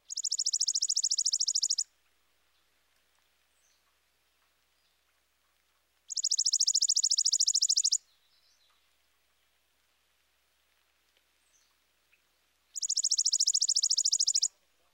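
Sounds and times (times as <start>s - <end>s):
chipping sparrow dry mechanical trill: 0.0s - 1.9s, 6.1s - 8.0s, 12.7s - 14.5s.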